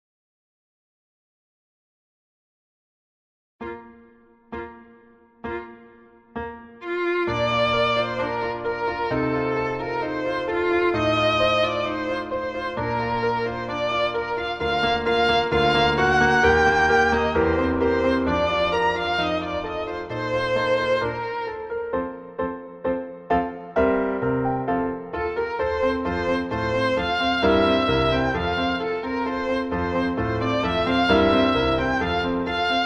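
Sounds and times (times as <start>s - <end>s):
piano: 3.6s - 32.8s
violin: 6.8s - 32.8s.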